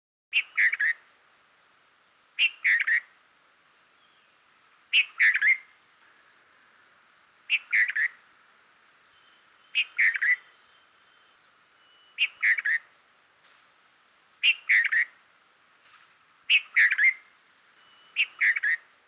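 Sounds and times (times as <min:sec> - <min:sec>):
bulbul bird call: 0:00.3 - 0:01.1, 0:02.4 - 0:03.1, 0:03.9 - 0:06.6, 0:07.4 - 0:08.2, 0:09.0 - 0:13.0, 0:14.4 - 0:15.2, 0:16.5 - 0:19.0.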